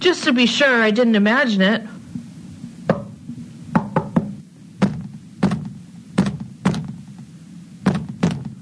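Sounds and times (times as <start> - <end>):
speech: 0.0 - 2.0
dull solid knocking on a wall: 2.9 - 3.1, 3.8 - 7.1, 7.8 - 8.6.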